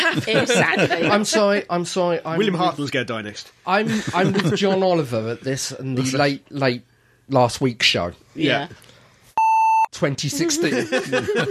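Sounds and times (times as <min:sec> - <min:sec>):
laughter: 0:00.0 - 0:01.4, 0:03.8 - 0:04.9, 0:10.4 - 0:11.4
speech: 0:00.1 - 0:08.9, 0:09.9 - 0:11.4
censor bleep tone: 0:09.4 - 0:09.9.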